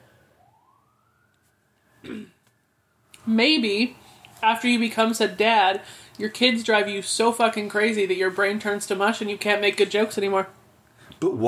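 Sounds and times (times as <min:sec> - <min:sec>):
faint emergency siren wailing: 0:00.0 - 0:10.6
sharp cough: 0:02.0 - 0:02.4
speech: 0:03.3 - 0:10.6, 0:11.2 - 0:11.4.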